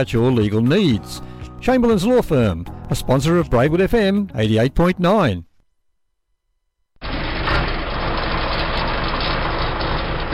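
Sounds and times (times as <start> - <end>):
speech: 0.0 - 5.5
Kubota M71 tractor 6.1-litre diesel engine idling: 7.0 - 10.3.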